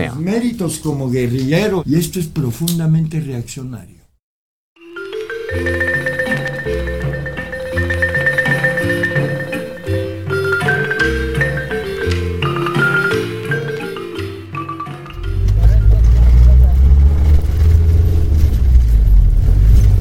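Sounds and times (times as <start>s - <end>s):
speech: 0.0s - 4.0s
music: 4.8s - 16.2s
car driving over a gravel road in northern Guatemala: 15.2s - 20.0s.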